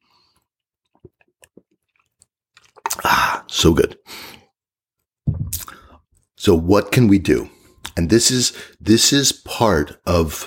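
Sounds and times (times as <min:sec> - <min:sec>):
person sipping coffee: 0:00.2 - 0:03.5, 0:05.5 - 0:05.9
speech: 0:03.5 - 0:04.1, 0:06.4 - 0:10.4.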